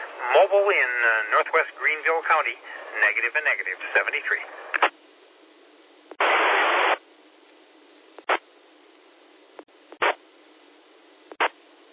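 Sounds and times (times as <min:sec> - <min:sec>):
static bursts from a 2-meter amateur radio net: 0:00.0 - 0:05.0, 0:06.1 - 0:07.0, 0:08.2 - 0:08.5, 0:09.9 - 0:10.2, 0:11.3 - 0:11.6
speech: 0:00.2 - 0:04.9.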